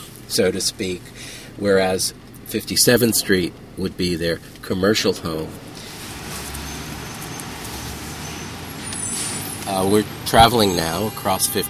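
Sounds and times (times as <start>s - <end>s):
bus engines in a traffic jam: 0.0s - 11.6s
idling and slow-moving vehicles rumbling in a traffic jam: 0.0s - 11.6s
speech: 0.3s - 5.7s, 9.7s - 11.6s
faint hiss of bus air brakes: 5.8s - 10.0s.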